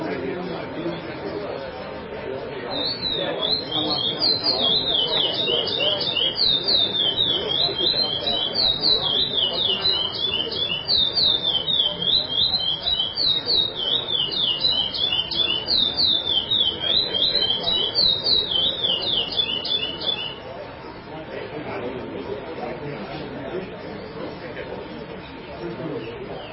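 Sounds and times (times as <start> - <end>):
steady background noise: 0.0 - 26.5
chestnut-bellied seed finch singing: 2.6 - 20.6.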